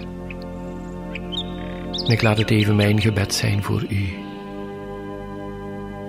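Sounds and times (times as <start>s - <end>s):
nightingale singing: 0.0s - 4.7s
speech: 2.1s - 4.3s.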